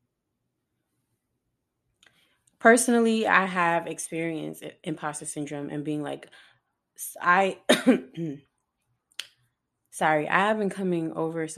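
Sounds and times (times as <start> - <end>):
speech: 2.6 - 8.5, 10.0 - 11.5
person coughing with a lingering cough: 7.7 - 8.4.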